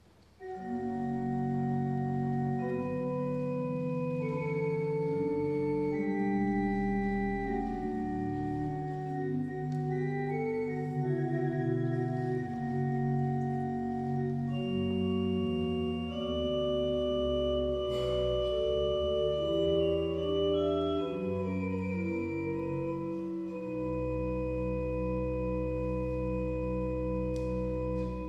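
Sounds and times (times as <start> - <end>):
figured bass accompaniment: 0.4 - 28.2.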